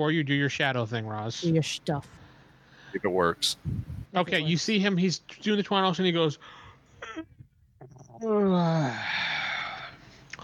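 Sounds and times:
speech: 0:00.0 - 0:02.2, 0:02.9 - 0:07.3, 0:08.2 - 0:09.4
person mimicking a yawn with their voice: 0:07.8 - 0:09.7.

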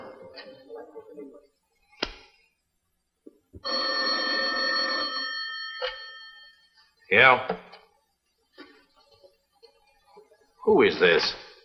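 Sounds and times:
telephone bell ringing: 0:03.6 - 0:06.7
speech: 0:07.1 - 0:07.6, 0:10.7 - 0:11.4.

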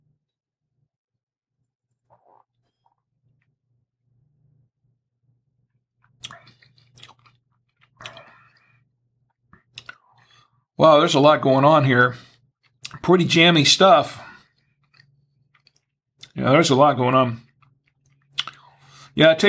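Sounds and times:
mouth slurping, sucking and lip smacks while tasting red wine: 0:02.0 - 0:03.0, 0:06.0 - 0:08.8, 0:09.5 - 0:10.4, 0:12.6 - 0:13.0, 0:17.5 - 0:18.8
speech: 0:10.8 - 0:12.3, 0:13.0 - 0:14.3, 0:16.4 - 0:17.5, 0:19.2 - 0:19.4.

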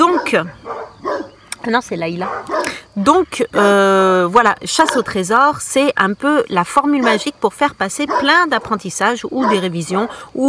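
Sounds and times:
protection dog barking: 0:00.0 - 0:01.4, 0:02.2 - 0:02.8, 0:04.8 - 0:05.1, 0:07.0 - 0:07.4, 0:08.0 - 0:10.2
speech: 0:00.3 - 0:00.6, 0:01.6 - 0:10.4.

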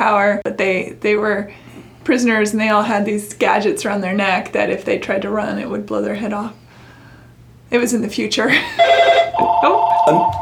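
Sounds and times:
speech: 0:00.0 - 0:06.6, 0:07.7 - 0:10.4
telephone ringing with a bright electronic tone: 0:08.7 - 0:10.4.

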